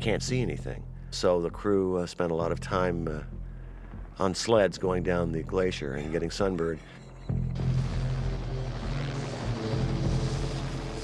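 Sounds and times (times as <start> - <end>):
speech: 0.0 - 3.4, 4.2 - 7.7
helicopter engine and rotors over a snowy glacier landscape: 2.7 - 11.0.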